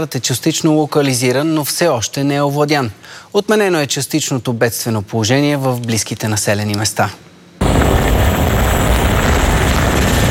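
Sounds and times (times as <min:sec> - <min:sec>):
speech: 0:00.0 - 0:07.3
Cougar helicopter rotor and engine during aerial firefighting: 0:07.6 - 0:10.2.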